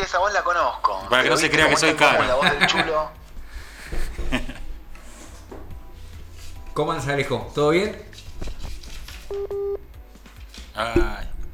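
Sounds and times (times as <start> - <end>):
speech: 0.2 - 3.2, 6.8 - 8.5, 10.8 - 11.3
laughter: 0.6 - 8.2
electronic phone-line beeps as a call reconnects during a live broadcast: 9.3 - 10.0.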